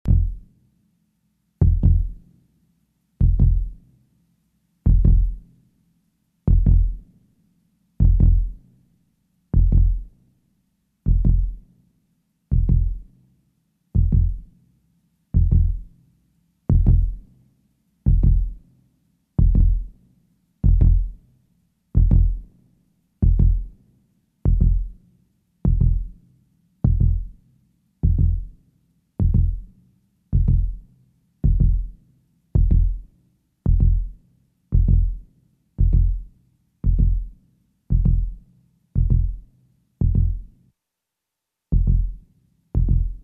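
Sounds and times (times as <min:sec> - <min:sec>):
heartbeat: 0:00.1 - 0:00.4, 0:01.6 - 0:02.2, 0:03.2 - 0:03.8, 0:04.9 - 0:05.4, 0:06.5 - 0:07.0, 0:08.0 - 0:08.6, 0:09.6 - 0:10.1, 0:11.1 - 0:11.6, 0:12.5 - 0:13.0, 0:14.0 - 0:14.5, 0:15.4 - 0:15.9, 0:16.7 - 0:17.2, 0:18.1 - 0:18.6, 0:19.4 - 0:19.9, 0:20.6 - 0:21.2, 0:22.0 - 0:22.4, 0:23.2 - 0:23.7, 0:24.5 - 0:25.0, 0:25.7 - 0:26.2, 0:26.8 - 0:27.3, 0:28.0 - 0:28.5, 0:29.2 - 0:29.7, 0:30.3 - 0:30.8, 0:31.4 - 0:32.0, 0:32.6 - 0:33.0, 0:33.6 - 0:35.2, 0:35.8 - 0:38.4, 0:39.0 - 0:40.5, 0:41.7 - 0:42.2, 0:42.8 - 0:43.2.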